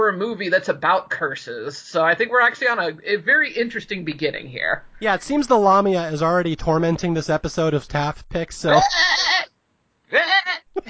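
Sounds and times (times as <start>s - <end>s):
speech: 0.0s - 9.5s, 10.1s - 10.8s
goat bleating: 8.7s - 9.5s, 10.1s - 10.7s.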